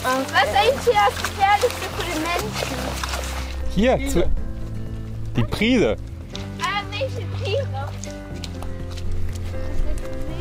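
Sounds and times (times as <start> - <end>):
horse hooves clip-clopping at a walk: 0.0 - 10.4
speech: 0.1 - 4.4, 5.4 - 6.1, 7.0 - 8.7.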